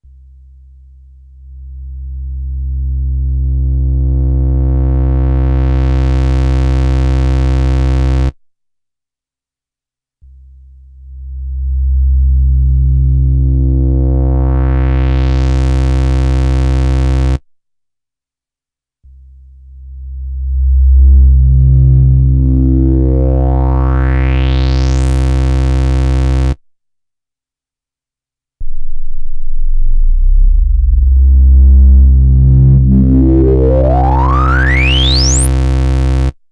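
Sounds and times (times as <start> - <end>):
filtered square wave synthesizer: 2.9 - 8.3, 12.2 - 17.4, 20.7 - 26.6, 28.6 - 36.4.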